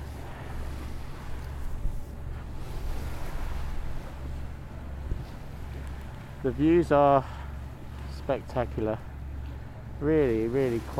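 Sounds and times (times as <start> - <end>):
rushing wind at sea: 0.0 - 8.0
boat engine drone at sea: 0.0 - 10.9
rushing sea water: 0.0 - 10.9
speech: 6.4 - 7.4, 8.3 - 9.1, 10.0 - 10.9.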